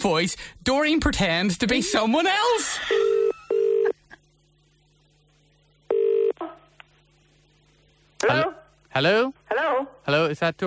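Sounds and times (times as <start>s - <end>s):
speech: 0.0s - 3.3s, 8.2s - 10.6s
faint steady hum: 0.0s - 10.6s
electronic telephone ringing tone in a double-burst pattern: 3.1s - 3.9s, 5.9s - 6.4s.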